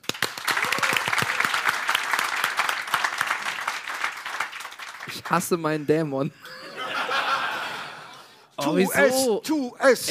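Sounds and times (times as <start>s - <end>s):
crowd applauding: 0.0s - 5.8s
speech: 5.1s - 6.7s, 8.6s - 10.0s
laughter: 5.9s - 8.6s.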